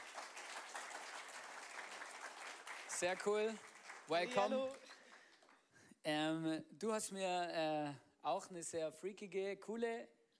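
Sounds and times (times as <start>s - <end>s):
audience applause greeting a guest invited onto a stage: 0.0s - 5.6s
speech: 3.0s - 4.8s, 6.0s - 10.2s.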